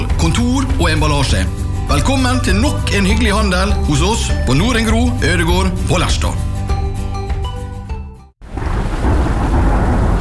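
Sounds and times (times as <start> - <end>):
music: 0.0 - 8.4
speech: 0.2 - 6.5
heavy rain: 8.4 - 10.1
loud thunder rumbling: 8.4 - 10.1.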